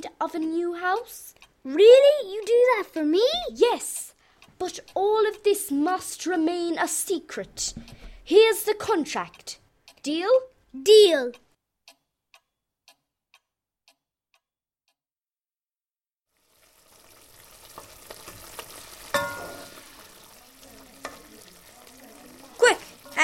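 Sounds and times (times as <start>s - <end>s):
clock ticking: 0.0s - 15.0s, 17.9s - 23.2s
speech: 0.1s - 11.4s
dinner frying on a six-ring cooker: 16.3s - 23.2s.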